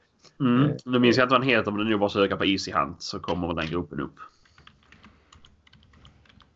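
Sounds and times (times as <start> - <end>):
speech: 0.4 - 4.4
fingers typing on a computer keyboard: 4.4 - 6.5.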